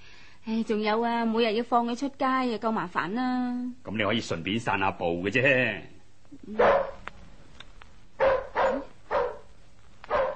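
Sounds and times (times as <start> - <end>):
speech: 0.5 - 7.0
dog barking: 6.6 - 7.0, 8.2 - 9.5, 10.1 - 10.3.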